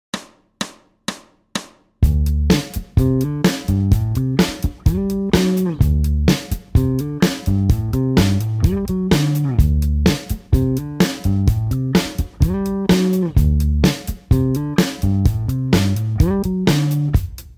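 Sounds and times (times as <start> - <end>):
instrumental licks in D Mixolydian: 2.1 - 17.2.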